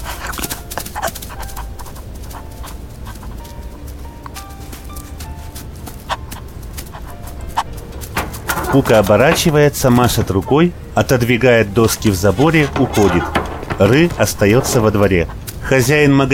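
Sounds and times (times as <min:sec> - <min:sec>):
constant noise: 0:00.0 - 0:16.3
dog running after a girl across a yard, footfalls pattering: 0:00.0 - 0:16.3
speech: 0:08.7 - 0:16.3.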